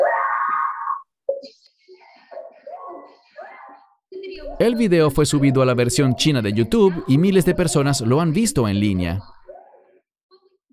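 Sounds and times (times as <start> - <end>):
woman's loud sustained scream: 0.0 - 1.1
speech: 4.6 - 9.4.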